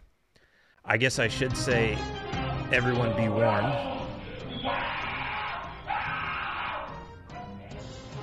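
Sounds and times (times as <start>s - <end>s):
speech: 0.8s - 4.0s, 4.6s - 5.0s
teenage student screaming in anguish while tied down and given electric shocks: 2.7s - 7.0s.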